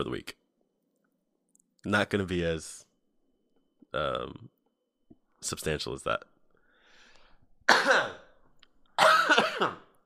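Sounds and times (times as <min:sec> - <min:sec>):
speech: 0:00.0 - 0:00.4, 0:01.8 - 0:02.9, 0:03.9 - 0:04.5, 0:05.4 - 0:06.3, 0:07.7 - 0:08.2, 0:09.3 - 0:09.8
coughing into a microphone: 0:07.7 - 0:08.4, 0:09.0 - 0:10.0.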